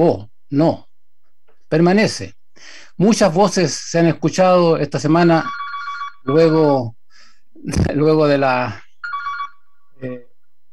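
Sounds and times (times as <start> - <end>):
speech: 0.0 - 0.9, 1.7 - 5.6, 6.2 - 7.0, 7.6 - 8.8, 10.0 - 10.2
telephone ringtone for an incoming call: 5.4 - 6.4, 9.0 - 9.9.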